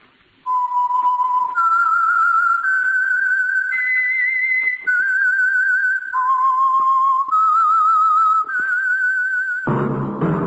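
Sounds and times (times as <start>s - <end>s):
whistled signal tune for an oil company radio program: 0.5s - 10.4s.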